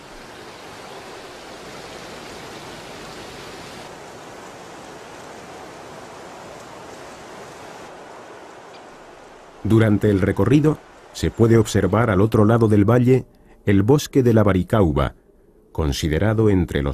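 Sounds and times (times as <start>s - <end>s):
river waterfall cascading: 0.0s - 12.4s
speech: 9.6s - 15.2s, 15.8s - 16.9s.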